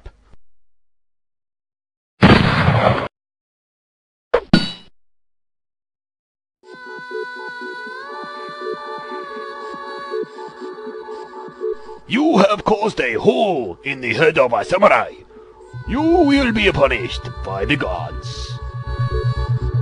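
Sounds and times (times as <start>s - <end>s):
loud harsh gunshot blast: 2.2s - 3.1s
speech: 12.1s - 15.3s, 15.8s - 19.7s.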